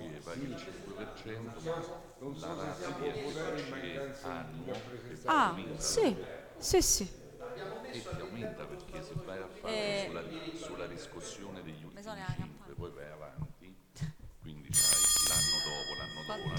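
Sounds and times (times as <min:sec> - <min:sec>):
speech: 0:00.3 - 0:15.0
small bell ringing during a council meeting vote: 0:14.7 - 0:16.5.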